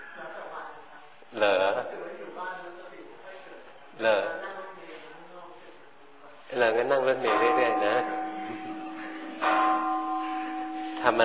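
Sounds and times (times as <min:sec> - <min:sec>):
speech: 0:01.3 - 0:02.0, 0:04.0 - 0:04.4, 0:06.5 - 0:08.2, 0:11.0 - 0:11.2
bell struck and ringing with a clear sustained tone: 0:07.2 - 0:11.2.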